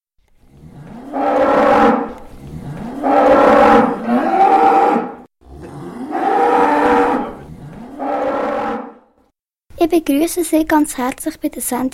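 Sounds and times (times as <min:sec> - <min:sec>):
horned cows mooing on a farm: 0:00.5 - 0:09.0
speech: 0:10.0 - 0:11.9.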